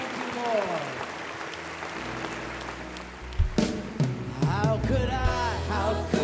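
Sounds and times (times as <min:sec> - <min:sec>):
church congregation clapping as an offering: 0:00.0 - 0:03.9
speech: 0:04.8 - 0:06.1.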